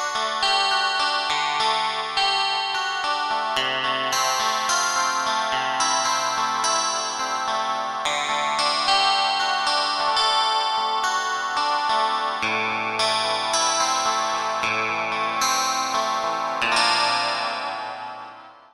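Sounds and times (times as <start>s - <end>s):
synthesizer electric guitar factory patch: 0.1s - 18.7s.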